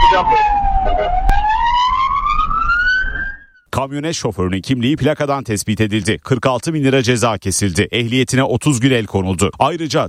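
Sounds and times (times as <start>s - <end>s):
ambulance siren wailing on a road: 0.0s - 3.6s
speech: 0.2s - 1.5s, 3.8s - 10.0s.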